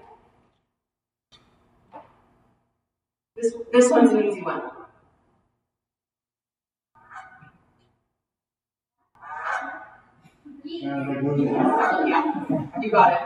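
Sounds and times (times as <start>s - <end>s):
speech: 3.4s - 4.8s, 12.8s - 13.2s
Canada geese honking: 9.2s - 9.9s, 10.9s - 12.3s
laughter: 10.8s - 13.2s.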